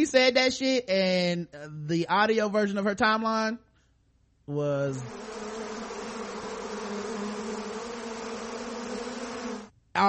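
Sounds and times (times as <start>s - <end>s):
speech: 0.0s - 3.7s, 4.5s - 5.6s
swarm of bees buzzing: 4.9s - 9.7s.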